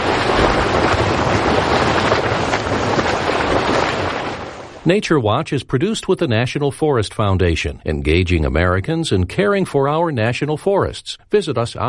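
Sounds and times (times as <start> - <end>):
geyser erupting water and steam: 0.0 - 5.0
speech: 4.9 - 11.8.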